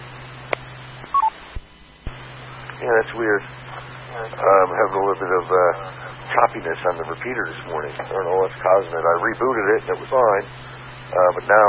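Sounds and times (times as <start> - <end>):
telephone keypad tones while switching to a phone: 1.1 - 1.3
speech: 2.8 - 11.6.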